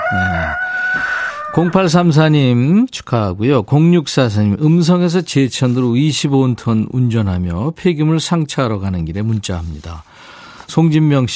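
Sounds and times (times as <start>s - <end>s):
rooster crowing in a song: 0.0s - 2.0s
speech: 0.1s - 11.3s.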